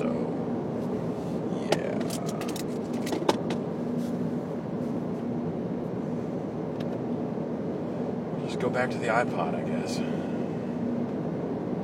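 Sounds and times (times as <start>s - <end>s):
car engine and tire drone heard from inside the cabin: 0.0s - 11.8s
speech: 8.6s - 10.4s.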